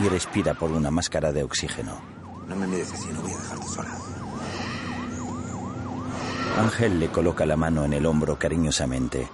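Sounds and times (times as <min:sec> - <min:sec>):
speech: 0:00.0 - 0:04.2, 0:06.6 - 0:09.3
ambulance siren wailing in a fast up-and-down yelp: 0:00.0 - 0:07.9
low rumble of traffic: 0:00.0 - 0:09.3.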